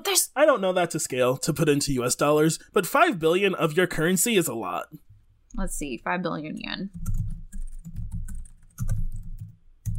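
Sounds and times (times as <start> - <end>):
speech: 0.1 - 7.2
person typing on a computer keyboard: 6.9 - 9.9.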